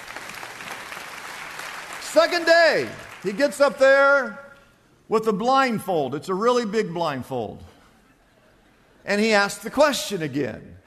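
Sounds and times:
crowd applauding: 0.0 - 3.6
speech: 2.1 - 4.4, 5.1 - 7.7, 9.0 - 10.8.

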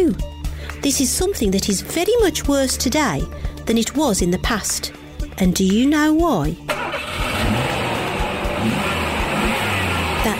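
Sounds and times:
speech: 0.0 - 6.7
car engine revving: 6.7 - 10.3.

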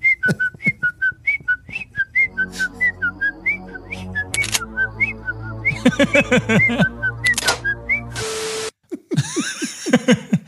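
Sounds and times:
person whistling a cheerful bouncy tune: 0.0 - 5.8, 6.6 - 8.2
orchestral backing music: 2.3 - 8.7
sharp clicks and bursts: 4.2 - 4.8, 7.2 - 8.7
laughter: 5.7 - 7.1, 8.9 - 10.4.

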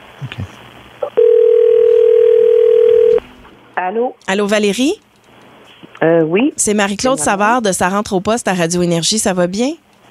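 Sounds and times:
speech: 0.2 - 0.6, 3.9 - 5.0, 6.0 - 9.8
telephone dial tone before a call: 1.2 - 3.2.

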